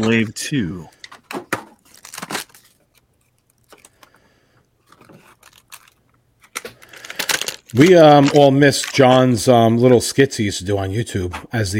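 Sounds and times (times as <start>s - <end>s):
speech: 0.0s - 1.0s, 7.7s - 11.7s
collectible figure packaging rustling: 0.9s - 4.2s, 4.8s - 9.2s
collectible figure packaging tearing and crinkling: 1.8s - 4.0s, 4.8s - 9.1s.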